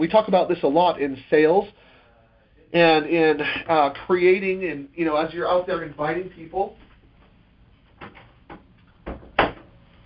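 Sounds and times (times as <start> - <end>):
speech: 0.0 - 1.9, 2.7 - 6.8
door being handled and shut: 9.0 - 9.7.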